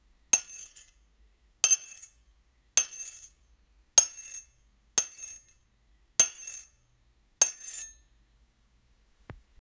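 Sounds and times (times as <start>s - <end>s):
chisel cutting gem: 0.4s - 1.0s, 1.6s - 2.2s, 2.8s - 3.4s, 4.0s - 5.6s, 6.2s - 6.8s, 7.4s - 8.0s.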